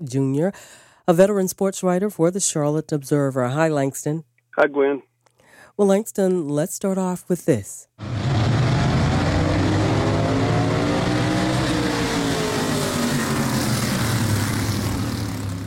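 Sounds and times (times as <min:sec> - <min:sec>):
speech: 0:00.0 - 0:05.1, 0:05.8 - 0:08.2
race cars roaring around a speedway: 0:08.0 - 0:15.6.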